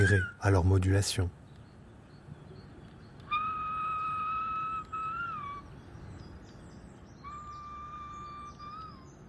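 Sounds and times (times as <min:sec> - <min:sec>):
bird giving long clear whistled notes: 0:00.0 - 0:00.7, 0:02.5 - 0:09.2
speech: 0:00.0 - 0:01.4
steady outdoor hiss: 0:00.0 - 0:09.2.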